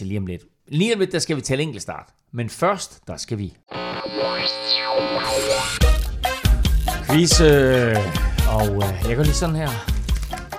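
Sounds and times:
speech: 0.0s - 5.9s, 7.1s - 10.0s
light papery flicks and taps of playing cards: 9.8s - 10.5s.

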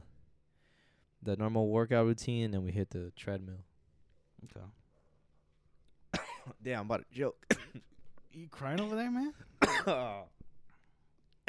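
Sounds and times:
speech: 1.2s - 3.7s, 4.4s - 4.8s, 6.5s - 10.4s
harsh cough: 6.1s - 6.6s, 7.5s - 8.0s, 9.5s - 10.3s
strained throaty cough after choking on saliva: 6.1s - 6.6s, 7.5s - 8.0s, 9.6s - 10.2s.

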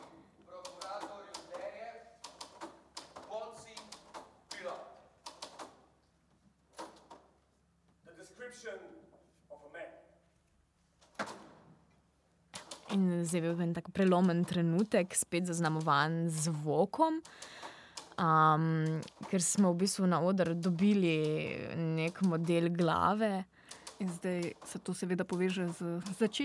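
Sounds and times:
typewriters clattering: 0.0s - 5.8s, 12.6s - 26.4s
speech: 8.6s - 9.0s, 12.9s - 17.6s, 18.2s - 26.4s.

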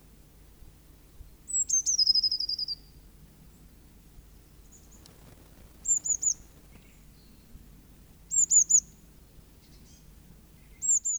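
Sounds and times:
soft background noise: 0.0s - 11.1s
Eurasian blue tit (Cyanistes caeruleus) song: 1.5s - 7.6s, 8.3s - 9.0s, 9.6s - 11.1s.

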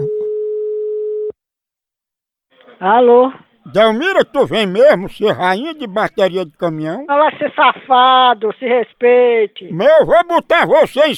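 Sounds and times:
telephone call ringing tone: 0.0s - 1.4s
speech: 2.8s - 11.1s.

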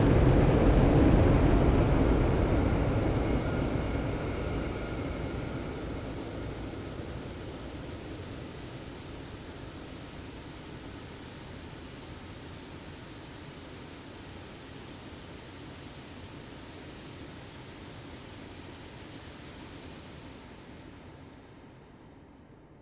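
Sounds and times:
loud dense roar of acoustic test noise on a space telescope in an acoustic chamber: 0.0s - 7.7s.

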